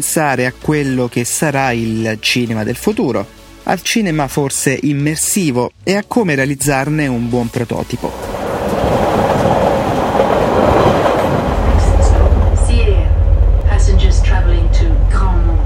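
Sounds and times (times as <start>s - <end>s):
speech: 0.0s - 8.4s
Swiss train riding on rails: 7.1s - 15.6s.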